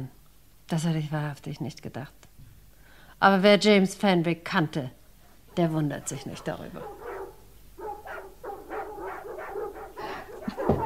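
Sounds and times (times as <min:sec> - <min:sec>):
speech: 0:00.0 - 0:02.3, 0:03.2 - 0:05.0, 0:05.6 - 0:07.0
dogs barking and yipping with a whimpering edge: 0:05.2 - 0:10.8.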